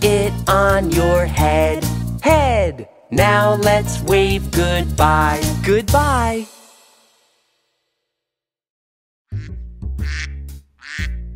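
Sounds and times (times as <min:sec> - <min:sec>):
speech: 0:00.0 - 0:06.6
duck quacking: 0:09.3 - 0:11.3.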